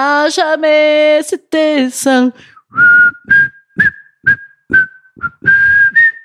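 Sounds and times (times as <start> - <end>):
speech: 0.0 - 3.2, 4.7 - 6.0
person whistling a short tune: 2.6 - 6.2.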